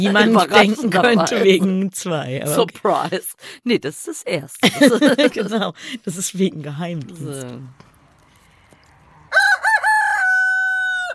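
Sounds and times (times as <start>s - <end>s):
speech: 0.0s - 7.9s
laughter: 4.6s - 6.0s
rooster crowing: 9.1s - 11.1s.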